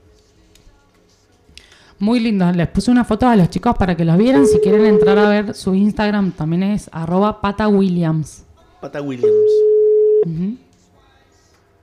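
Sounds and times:
speech: 2.0 - 10.6
telephone ringback tone while a call is placed: 4.3 - 5.5, 9.2 - 10.3.

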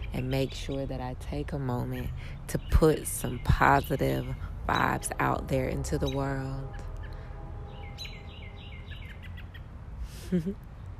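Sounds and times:
birds tweeting outdoors in sunshine: 0.0 - 9.8
speech: 0.1 - 6.9, 10.3 - 10.6.

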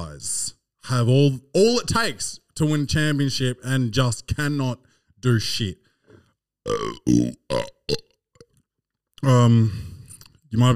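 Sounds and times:
speech: 0.2 - 5.8, 6.6 - 8.1, 9.2 - 9.9, 10.5 - 10.7
person burping: 6.6 - 8.6.

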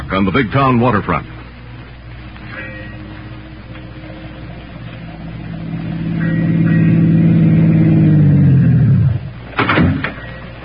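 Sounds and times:
speech: 0.1 - 1.3
car engine revving as the vehicle pulls up: 1.2 - 10.1
car doors thumping: 9.6 - 10.6.

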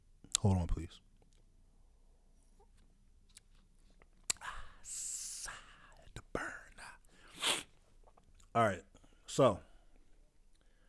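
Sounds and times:
speech: 0.4 - 1.1, 8.6 - 9.7
person sipping whisky: 7.2 - 8.3
wet slurping hisses of sipping whisky: 7.3 - 7.7.

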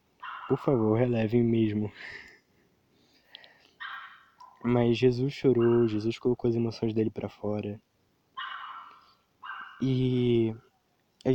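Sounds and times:
dog barking: 0.2 - 0.7, 3.8 - 4.7, 5.5 - 6.1, 8.4 - 9.8
speech: 0.5 - 2.3, 4.6 - 7.9, 9.8 - 11.3.

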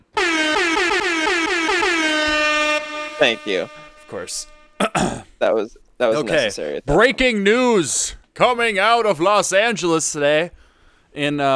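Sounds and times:
air horn sound effect honks: 0.0 - 4.9
speech: 3.2 - 11.5.

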